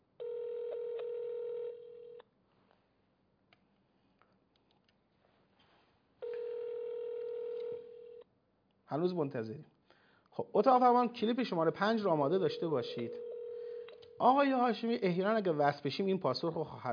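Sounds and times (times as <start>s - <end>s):
long telephone call ringback tones of a phone line: 0.2s - 2.2s, 6.2s - 8.2s, 12.9s - 14.7s
speech: 8.9s - 9.7s, 10.4s - 13.2s, 14.2s - 16.9s.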